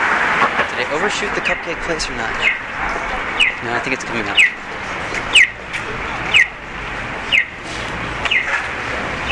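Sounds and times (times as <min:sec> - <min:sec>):
low hum of street traffic: 0:00.0 - 0:09.3
speech: 0:00.9 - 0:05.4
accessible pedestrian crossing signal for blind people chirping: 0:01.4 - 0:07.6, 0:08.2 - 0:08.6, 0:09.2 - 0:09.3.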